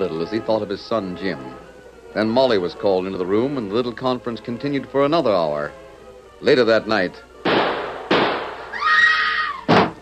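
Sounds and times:
speech: 0.0 - 5.8, 6.4 - 7.3
gunshots inside an old house: 7.4 - 8.7
wavering high-pitched tonal cry: 8.7 - 9.7.

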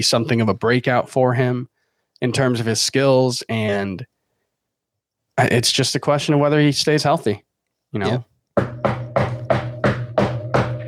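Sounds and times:
speech: 0.0 - 4.1, 5.4 - 8.8
firm knocks on wood: 8.6 - 10.8.

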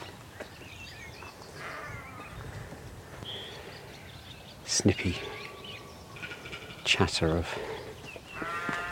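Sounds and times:
swallows and house martins twittering: 0.0 - 8.9
speech: 4.8 - 5.4, 6.9 - 7.8.

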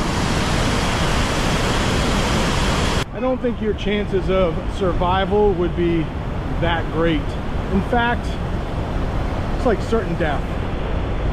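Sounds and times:
loud roar of rushing river water: 0.0 - 3.0, 3.7 - 11.3
speech: 3.3 - 8.4, 9.6 - 10.6.

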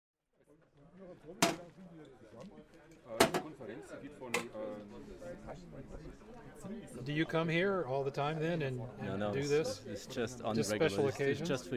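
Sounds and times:
speech: 1.0 - 11.7
small metal compartment door of a portable sausage warmer opened and shut in Germany: 1.4 - 1.6, 3.2 - 3.5.

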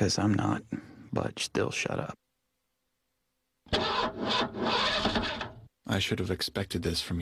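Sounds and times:
speech: 0.0 - 2.2, 5.9 - 7.1
car engine cranking, trying to start: 3.7 - 5.7.

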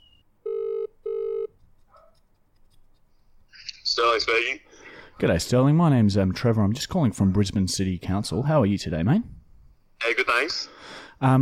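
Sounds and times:
telephone ringback tone of an outgoing call: 0.4 - 1.5
speech: 4.0 - 9.4, 10.1 - 11.4.

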